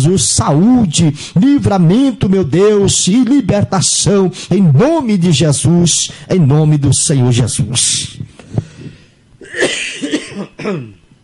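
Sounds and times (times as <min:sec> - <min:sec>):
speech: 0:00.0 - 0:08.3, 0:10.6 - 0:11.0
person coughing during a spoken prayer: 0:09.4 - 0:11.0.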